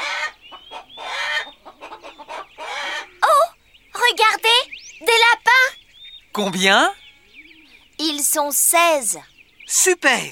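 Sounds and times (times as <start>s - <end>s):
hens clucking, squawking and cackling: 0.0s - 7.9s
speech: 6.4s - 7.0s, 8.0s - 10.3s.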